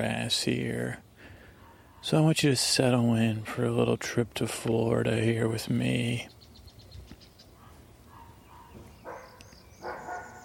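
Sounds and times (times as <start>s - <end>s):
speech: 0.0s - 1.0s, 2.0s - 6.4s
low steady noise: 0.0s - 10.4s
dog barking faintly outdoors in Florida: 1.6s - 2.4s, 7.6s - 10.4s.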